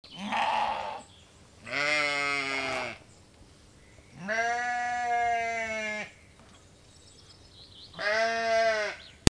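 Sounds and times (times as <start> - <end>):
sheep bleating: 0.2 - 1.0, 1.6 - 3.0, 4.2 - 6.1, 8.0 - 9.0.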